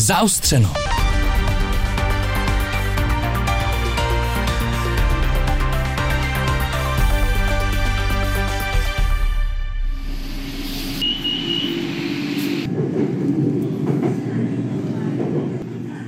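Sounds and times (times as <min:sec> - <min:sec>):
speech: 0:00.1 - 0:01.0
elevated city rail train in Bangkok rumbling past: 0:00.8 - 0:16.0
high squeal of elevated city rail train: 0:10.2 - 0:12.7
elevated city rail train rolling noise and rattling: 0:12.4 - 0:16.0.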